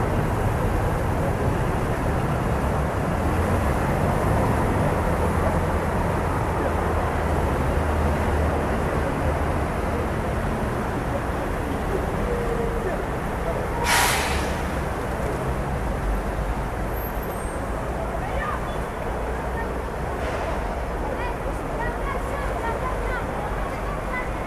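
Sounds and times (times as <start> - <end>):
faint murmurs of voices: 0.0 - 24.4
low rumble of city traffic at night in France: 0.0 - 24.4
brief sharp hiss or clatter: 13.8 - 14.7.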